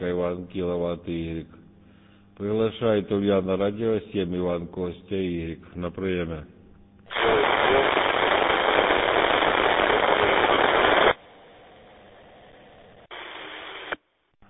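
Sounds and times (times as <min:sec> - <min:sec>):
speech: 0:00.0 - 0:01.6, 0:02.4 - 0:08.0
radio static crackling on amateur band: 0:07.1 - 0:11.2, 0:13.0 - 0:14.0.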